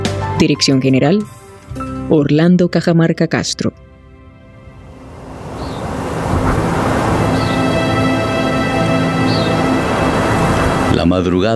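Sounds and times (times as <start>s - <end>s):
speech: 0.4s - 1.4s, 2.1s - 3.8s, 11.0s - 11.5s
soft wind blowing over dry dusty ground: 4.2s - 11.0s.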